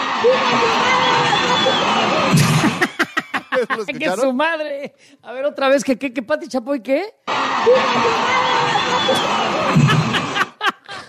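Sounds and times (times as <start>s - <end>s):
large crowd shouting together in a loud roar: 0.0s - 2.8s, 7.3s - 10.5s
speech: 0.2s - 0.9s, 3.6s - 10.0s
laughter: 0.2s - 4.2s, 7.6s - 11.0s.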